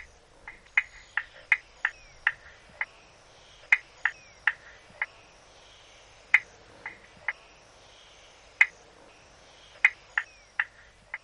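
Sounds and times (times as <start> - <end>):
spotted marsh frog calling with short sharp clicking taps: 0.0 - 5.2, 6.3 - 7.5, 8.6 - 8.8, 9.6 - 11.2
quiet night noise: 0.0 - 11.2.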